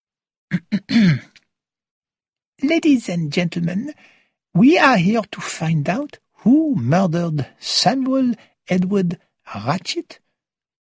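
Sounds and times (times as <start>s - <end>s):
speech: 0.5s - 1.3s, 2.6s - 10.2s
man giving a little cough to clear his throat: 0.5s - 1.4s.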